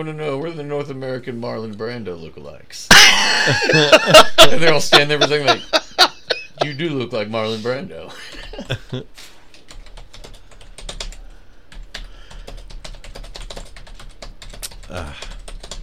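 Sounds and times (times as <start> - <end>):
speech: 0.0 - 5.8, 6.6 - 9.4, 14.9 - 15.3
laughter: 2.9 - 9.1
aggressive typing on a computer keyboard: 9.5 - 15.8.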